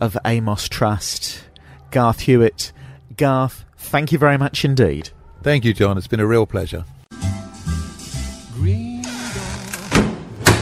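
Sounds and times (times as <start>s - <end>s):
speech: 0.0s - 7.0s, 8.6s - 8.9s
door creaking: 8.9s - 10.6s
door shutting with solid thunks: 9.4s - 10.6s.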